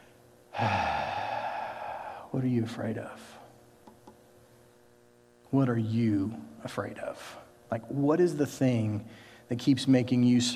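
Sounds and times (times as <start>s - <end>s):
deep breath: 0.5s - 2.3s, 9.1s - 9.5s
speech: 0.6s - 0.8s, 2.4s - 3.4s, 5.5s - 10.5s.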